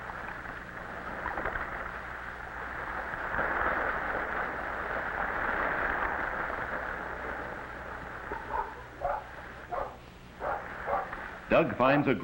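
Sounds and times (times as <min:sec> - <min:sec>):
steady rush of surf: 0:00.0 - 0:12.2
puppies yipping and barking excitedly: 0:08.3 - 0:11.1
speech: 0:11.5 - 0:12.2.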